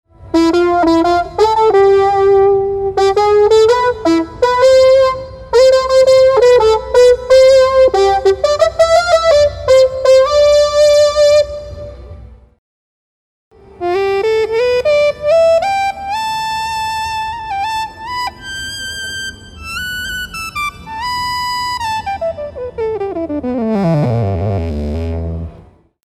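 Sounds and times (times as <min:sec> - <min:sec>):
EWI4000s electronic wind instrument: 0:00.1 - 0:12.3, 0:13.7 - 0:25.6.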